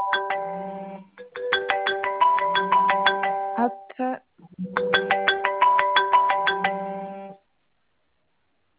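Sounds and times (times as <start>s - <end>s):
mobile phone ringtone ringing unanswered: 0.0s - 3.8s, 4.6s - 7.4s.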